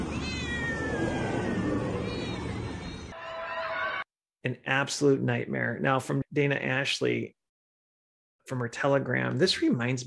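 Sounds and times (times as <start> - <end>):
cats meowing and yowling, trapped alive in bags: 0.0 - 3.1
speech: 4.4 - 7.4, 8.5 - 10.0.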